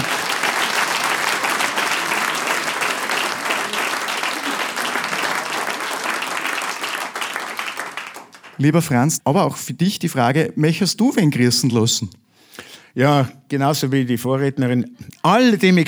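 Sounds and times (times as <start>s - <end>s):
large crowd applauding: 0.0s - 9.0s
speech: 8.6s - 12.2s, 13.0s - 15.8s.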